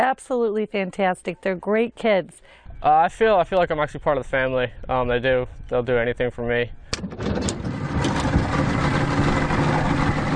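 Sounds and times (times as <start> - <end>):
speech: 0.0 - 7.5
boat engine idling during a coastal ride: 6.9 - 10.3.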